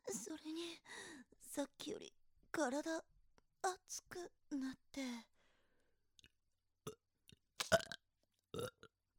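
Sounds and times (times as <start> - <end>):
speech: 0.2 - 3.1, 3.6 - 5.3
person burping: 7.8 - 8.0, 8.6 - 8.8.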